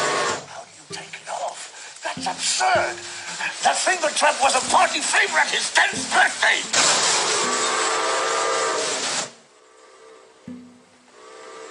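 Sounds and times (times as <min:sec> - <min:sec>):
toy steam train steam hiss: 0:01.7 - 0:10.3, 0:11.1 - 0:11.7
speech: 0:02.2 - 0:07.8
toy steam train whistle: 0:07.2 - 0:10.3.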